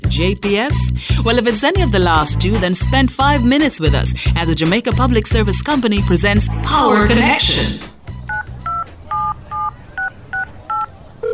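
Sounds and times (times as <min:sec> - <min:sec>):
speech: 0:00.1 - 0:07.9
longer lower tone: 0:06.0 - 0:08.2
telephone keypad dialing tones: 0:08.3 - 0:11.3.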